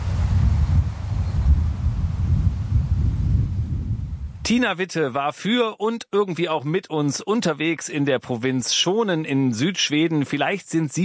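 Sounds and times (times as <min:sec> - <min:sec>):
wind rushing through grasses: 0:00.0 - 0:04.5
distant sea surf: 0:00.0 - 0:04.7
speech: 0:04.5 - 0:11.0.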